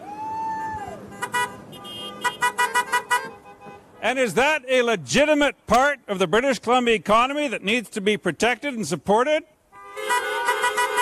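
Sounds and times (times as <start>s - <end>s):
road noise: 0.0s - 11.0s
logging truck horn honking: 1.1s - 4.2s, 9.7s - 11.0s
speech: 4.0s - 9.5s.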